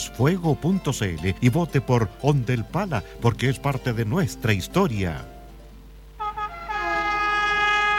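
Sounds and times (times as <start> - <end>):
speech: 0.1 - 5.4
train horn blasts: 6.2 - 7.9.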